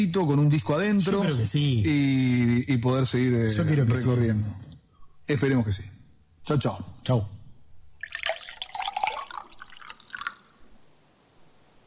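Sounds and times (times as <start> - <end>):
speech: 0.0 - 4.7, 5.3 - 5.9, 6.5 - 7.4
water poured into a drinking glass: 7.8 - 10.7.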